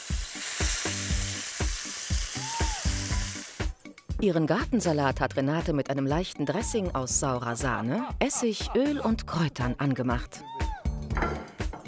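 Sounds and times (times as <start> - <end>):
fish fillets sizzling in a frying pan: 0.0 - 3.8
speech: 4.2 - 10.6
utensils knocking and clinking: 11.1 - 11.8.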